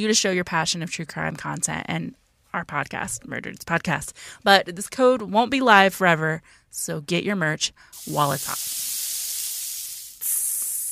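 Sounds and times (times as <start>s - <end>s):
speech: 0.0s - 9.0s
bright sizzling hiss sound effect: 7.9s - 10.9s.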